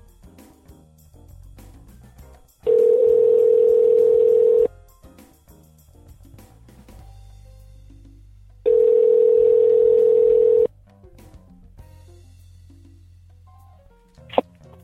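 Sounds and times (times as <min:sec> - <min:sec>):
outgoing call ringing tone over an internet phone line: 0:02.7 - 0:04.7, 0:08.7 - 0:10.7.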